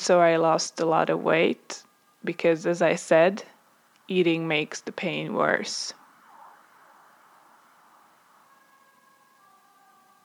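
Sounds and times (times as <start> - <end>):
speech: 0.0 - 3.5, 4.1 - 6.0
soft hiss: 0.0 - 10.2
faint ambulance siren wailing: 6.0 - 10.2.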